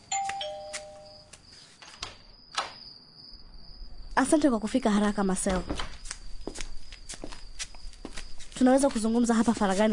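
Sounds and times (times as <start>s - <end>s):
bright electronic doorbell chime: 0.0s - 1.3s
speech: 4.2s - 6.0s, 8.6s - 9.9s.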